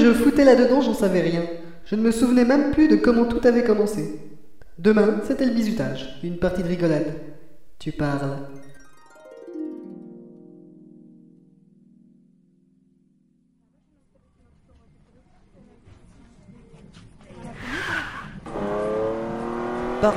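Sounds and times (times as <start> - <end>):
speech: 0.0 - 8.6
Porsche sports car tires squealing: 17.5 - 20.1
Porsche sports car engine roaring and revving: 17.6 - 20.1.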